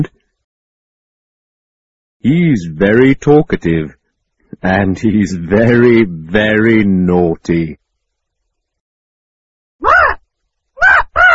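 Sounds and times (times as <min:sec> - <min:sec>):
speech: 0:02.2 - 0:04.0, 0:04.6 - 0:07.8
parrot squawking: 0:09.8 - 0:10.2, 0:10.8 - 0:11.3.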